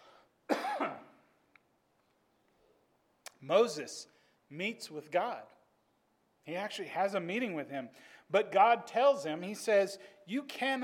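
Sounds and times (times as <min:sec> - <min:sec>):
person coughing and clearing throat from a tickle in the throat: 0:00.5 - 0:01.2
speech: 0:03.4 - 0:05.6, 0:06.4 - 0:10.8.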